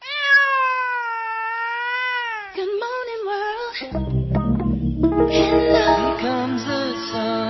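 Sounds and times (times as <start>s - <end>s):
cat meowing: 0.0s - 2.6s
speech: 3.8s - 7.3s.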